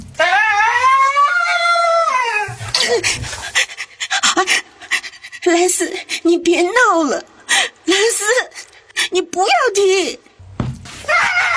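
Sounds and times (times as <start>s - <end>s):
dog whining: 0.2s - 6.0s
dog panting: 2.5s - 9.4s
speech: 2.9s - 3.5s, 4.4s - 4.7s, 5.5s - 7.3s, 9.1s - 10.3s.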